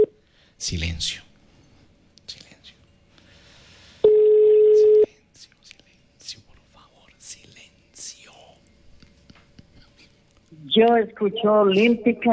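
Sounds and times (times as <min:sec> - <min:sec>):
speech: 0:00.6 - 0:01.3, 0:10.8 - 0:12.3
people whispering: 0:02.2 - 0:02.8, 0:05.1 - 0:12.3
telephone ringback tone from a studio line: 0:04.0 - 0:05.1.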